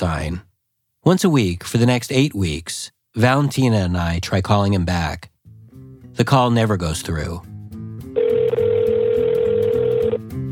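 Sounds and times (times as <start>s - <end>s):
speech: 0.0s - 5.3s, 6.2s - 7.5s
telephone ringing tone on an outgoing call to the Vatican switchboard: 8.2s - 10.2s.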